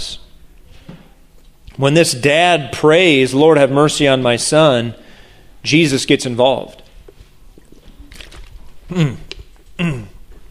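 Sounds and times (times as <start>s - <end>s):
speech: 1.8s - 5.0s, 5.6s - 6.8s, 8.9s - 9.2s, 9.8s - 10.1s
loud swallowing gulp: 7.1s - 10.5s
mouth clicks: 7.6s - 10.2s.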